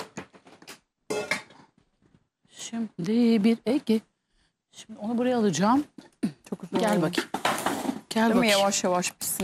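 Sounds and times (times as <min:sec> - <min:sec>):
metal cooking pots clanking and scraping on a hard surface: 0:01.1 - 0:01.7
speech: 0:02.7 - 0:04.1, 0:04.8 - 0:06.1, 0:06.7 - 0:07.4, 0:08.1 - 0:09.4.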